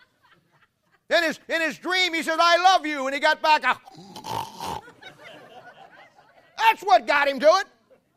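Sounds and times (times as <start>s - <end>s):
laughter: 0.0s - 1.4s, 4.6s - 8.1s
speech: 1.1s - 4.4s, 6.7s - 7.8s
person imitating the grunt of a 500-pound sow pig: 3.8s - 4.9s
quieter breathy sounds: 3.8s - 4.9s.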